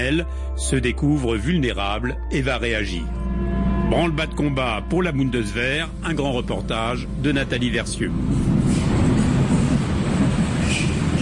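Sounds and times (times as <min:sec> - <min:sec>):
speech: 0:00.0 - 0:03.3, 0:03.9 - 0:08.6
metro train rumbling through a station: 0:02.5 - 0:11.2.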